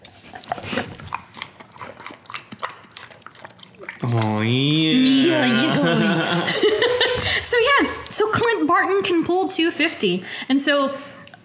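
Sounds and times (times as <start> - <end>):
dog chewing a treat: 0.0 - 4.5
speech: 4.0 - 11.1
laughter: 4.7 - 7.6.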